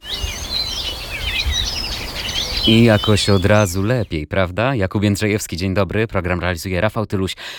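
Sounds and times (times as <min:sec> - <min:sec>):
several birds chirping and warbling: 0:00.0 - 0:04.3
speech: 0:02.6 - 0:07.5.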